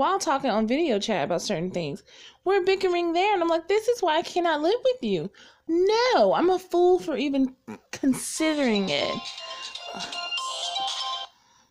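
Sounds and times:
speech: 0.0s - 10.2s
phone ringing with a bright melodic electronic ringtone: 8.6s - 11.4s.

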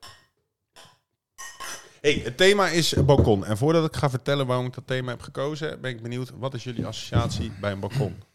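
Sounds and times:
glasses clinking in a toast: 0.0s - 1.9s
speech: 2.0s - 8.3s.

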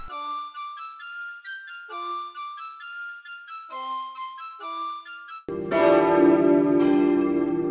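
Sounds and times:
church bells ringing for service: 5.5s - 7.6s.

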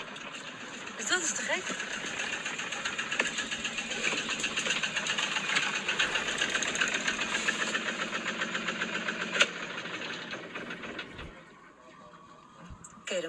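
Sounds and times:
small sailboat engine chugging: 0.0s - 13.2s
speech: 1.1s - 2.2s.

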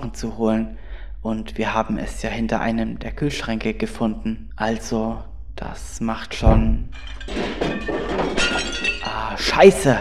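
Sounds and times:
speech: 0.0s - 8.0s, 8.6s - 10.0s
heavy thud of a figure toppling onto a table: 6.4s - 8.2s
plate smashing on the floor: 6.5s - 9.3s
shards of crockery clattering and tinkling: 6.9s - 9.4s.

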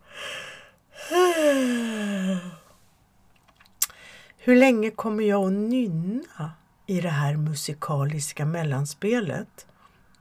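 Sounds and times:
person yawning: 0.1s - 2.7s
speech: 4.4s - 9.7s.

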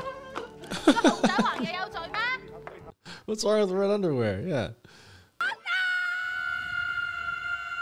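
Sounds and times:
laughter: 0.6s - 1.9s
speech: 0.9s - 1.9s, 3.3s - 4.8s
woman with scream powers in a film screaming: 5.4s - 7.7s.

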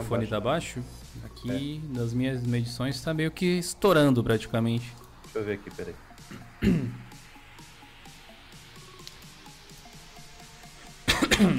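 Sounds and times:
speech: 0.1s - 7.0s
person coughing harshly: 6.3s - 7.1s, 11.0s - 11.5s.

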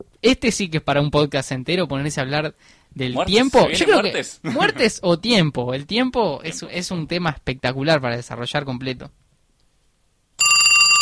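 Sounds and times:
speech: 0.0s - 9.2s
laughter: 3.7s - 4.9s
mobile phone electronic ringtone: 10.4s - 11.0s.

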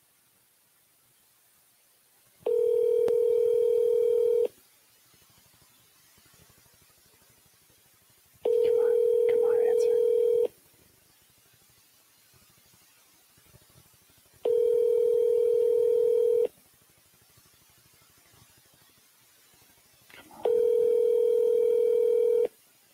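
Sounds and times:
electronic ringback tones of an unanswered outgoing phone call through the handset: 2.5s - 4.5s, 8.5s - 10.5s, 14.5s - 16.5s, 20.4s - 22.5s.

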